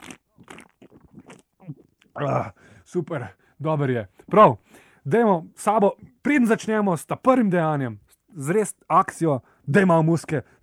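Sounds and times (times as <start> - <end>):
gulping beer from a freshly opened can: 0.0 - 3.4
speech: 2.2 - 10.6.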